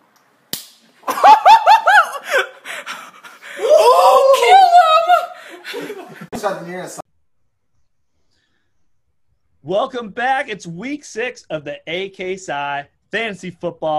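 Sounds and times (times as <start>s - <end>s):
person slapping another: 0.5s - 0.8s
people laughing: 1.1s - 3.6s, 4.3s - 7.0s
people whooping and shouting: 3.5s - 5.6s
speech: 9.7s - 13.9s.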